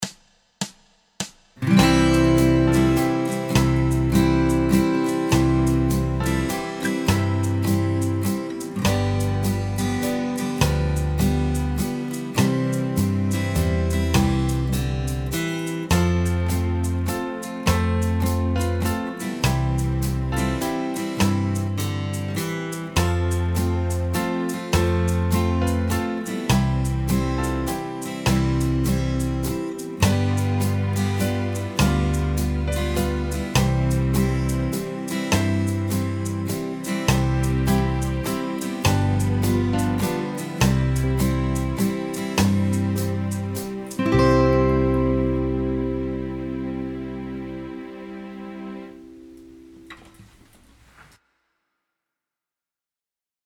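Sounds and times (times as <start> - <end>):
Christmas carol backing track without guitar: 1.6 - 49.8.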